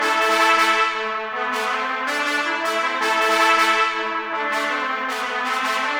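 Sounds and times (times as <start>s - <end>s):
trumpets playing staccato: 0.0s - 5.9s.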